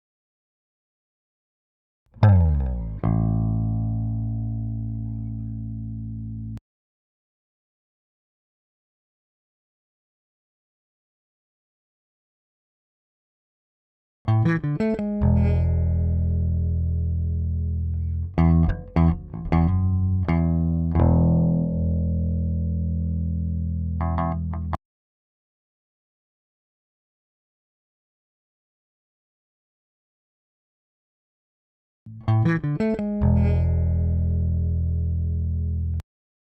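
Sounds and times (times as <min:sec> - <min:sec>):
bass: 0:02.1 - 0:06.6, 0:14.3 - 0:24.8, 0:32.1 - 0:36.0.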